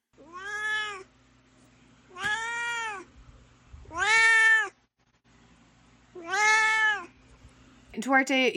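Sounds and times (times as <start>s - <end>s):
cat meowing: 0.2s - 1.1s, 2.1s - 3.1s, 3.8s - 4.8s, 6.2s - 7.1s
speech: 8.0s - 8.5s.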